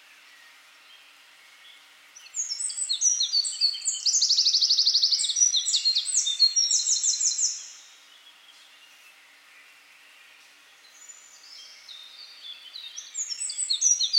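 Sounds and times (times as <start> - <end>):
Eurasian wren Troglodytes troglodytes singing: 2.2 - 7.9, 11.0 - 14.1.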